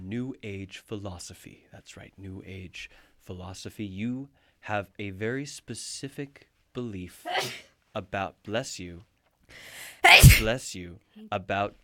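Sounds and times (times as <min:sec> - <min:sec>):
speech: 0:00.1 - 0:11.8
sneeze: 0:07.3 - 0:07.7, 0:09.8 - 0:10.5.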